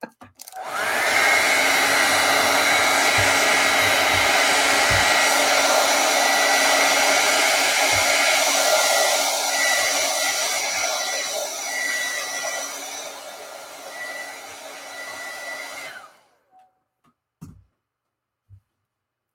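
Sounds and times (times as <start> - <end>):
blow dryer running while drying paint: 0.4 - 16.5.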